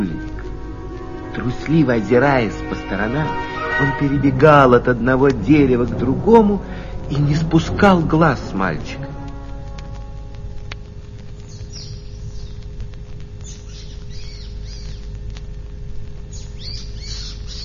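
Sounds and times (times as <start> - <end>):
steady low rumble: 0.0 - 17.6
speech: 1.4 - 9.1
small bird chirping and calling loudly: 9.8 - 15.4, 16.2 - 17.6.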